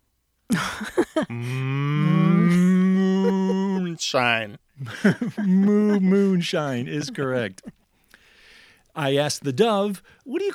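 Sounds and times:
laughter: 0:00.5 - 0:07.8
speech: 0:00.8 - 0:01.7, 0:04.1 - 0:07.8, 0:09.0 - 0:10.5
cow mooing: 0:01.3 - 0:03.2.

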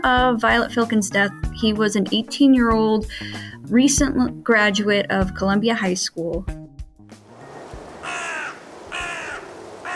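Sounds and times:
speech: 0:00.0 - 0:06.6
roosting crows cawing in a city: 0:07.5 - 0:09.9.

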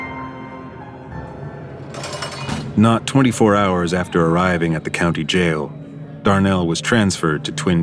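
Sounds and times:
dense rumbling street backdrop: 0:01.0 - 0:05.8
police sirens wailing: 0:01.7 - 0:07.8
speech: 0:02.8 - 0:07.8.

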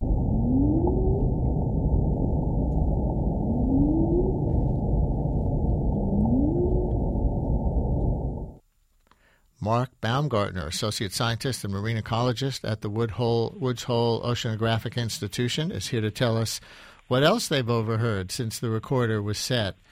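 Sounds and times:
humpback whale song recorded underwater by an acoustic monitoring buoy: 0:00.0 - 0:08.6
steady low rumble: 0:00.0 - 0:08.6
speech: 0:09.7 - 0:19.9.

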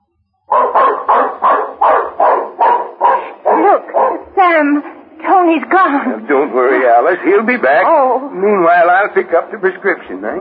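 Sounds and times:
dog barking: 0:00.5 - 0:04.4
speech: 0:05.5 - 0:10.3.

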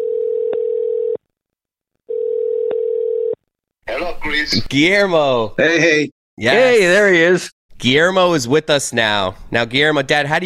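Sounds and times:
telephone dial tone while placing call: 0:00.0 - 0:01.2, 0:02.1 - 0:03.4
speech: 0:04.0 - 0:10.4.

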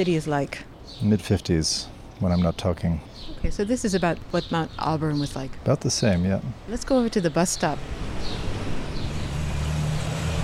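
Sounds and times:
speech: 0:00.0 - 0:08.4
traffic noise: 0:00.0 - 0:10.4
delivery truck engine drone on a city street: 0:07.7 - 0:10.4.

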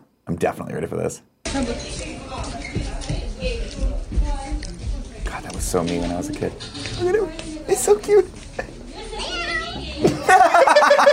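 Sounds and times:
speech: 0:00.4 - 0:03.9, 0:05.4 - 0:08.7
boy giggling: 0:10.0 - 0:11.1.

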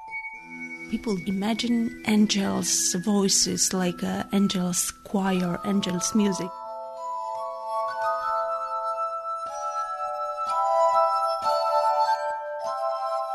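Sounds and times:
slow piano mazurka played on glass instruments: 0:00.0 - 0:13.3
speech: 0:00.9 - 0:06.6.

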